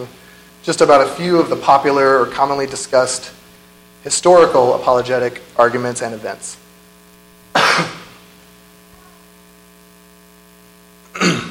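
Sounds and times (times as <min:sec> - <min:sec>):
speech: 0:00.0 - 0:03.4, 0:04.0 - 0:06.6, 0:07.5 - 0:08.0
steady low electrical hum: 0:00.0 - 0:11.4
throat clearing: 0:07.6 - 0:08.2, 0:11.1 - 0:11.4.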